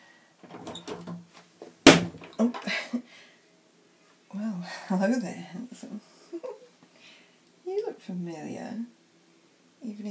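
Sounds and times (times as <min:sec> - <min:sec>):
door opening with a clack and rattle: 0:00.4 - 0:01.2
speech: 0:02.4 - 0:02.8, 0:04.9 - 0:06.1, 0:08.0 - 0:09.0.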